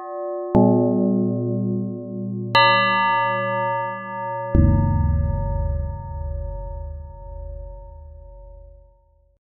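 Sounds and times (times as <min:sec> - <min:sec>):
synthesized bell tone: 0:00.7 - 0:08.9.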